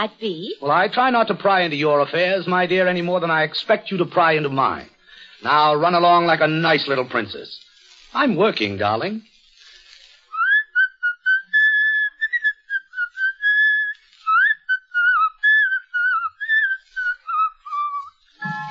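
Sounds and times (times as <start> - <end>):
speech: 0.0 - 9.3
person whistling a meandering tune: 10.3 - 18.6.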